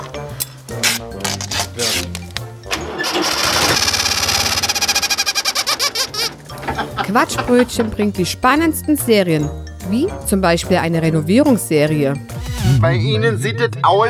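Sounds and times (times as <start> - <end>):
rubber chicken on an exhaust pipe squeaky honking from exhaust bursts: 3.0 - 6.3
engine sputtering and revving: 3.0 - 8.1
speech: 7.1 - 14.0.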